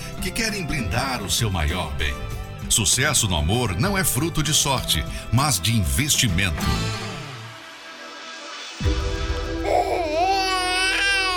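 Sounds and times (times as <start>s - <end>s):
speech: 0.2s - 7.0s
baby crying: 9.5s - 11.3s.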